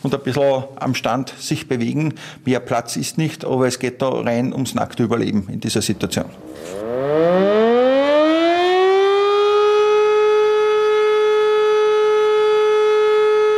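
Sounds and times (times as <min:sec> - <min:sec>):
speech: 0:00.0 - 0:07.6
civil defense siren wailing in a siren test: 0:06.0 - 0:13.5.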